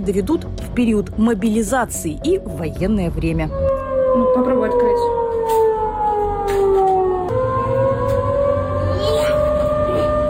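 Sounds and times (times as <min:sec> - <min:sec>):
speech: 0:00.0 - 0:05.2
civil defense warning siren wailing: 0:03.3 - 0:10.2.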